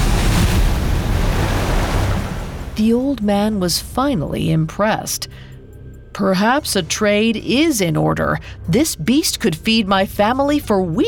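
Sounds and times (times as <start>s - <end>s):
heavy splash into water: 0.0s - 2.9s
speech: 2.8s - 5.5s, 6.2s - 11.0s.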